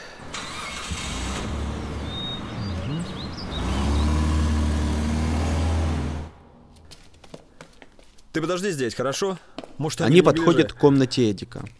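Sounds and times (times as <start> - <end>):
car engine running and pulling away: 0.0 - 6.9
speech: 8.4 - 11.7.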